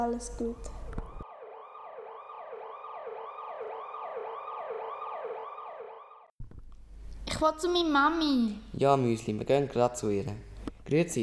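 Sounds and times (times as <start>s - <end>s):
speech: 0.0s - 0.8s, 7.4s - 11.2s
ambulance siren wailing in rising-and-falling sweeps: 0.7s - 6.3s.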